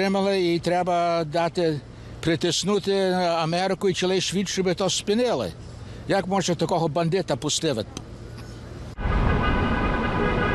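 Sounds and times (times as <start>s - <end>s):
speech: 0.0s - 8.1s
rumbling traffic of a car convoy in Los Angeles: 0.0s - 10.5s
car horns blaring from a convoy of nearly 400 cars in Los Angeles: 9.0s - 10.5s.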